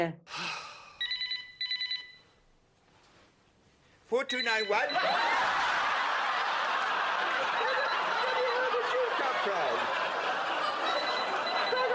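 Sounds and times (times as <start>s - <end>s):
speech: 0.0s - 0.4s, 4.1s - 5.6s
telephone ringing in warbling electronic trills: 1.0s - 2.4s, 7.2s - 11.9s
laughter: 4.7s - 11.9s.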